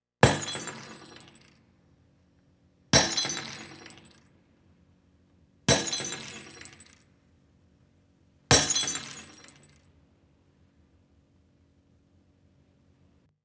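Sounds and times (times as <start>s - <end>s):
glass breaking in holophonic recording: 0.2s - 1.4s, 3.0s - 4.1s, 5.7s - 7.0s, 8.5s - 9.6s.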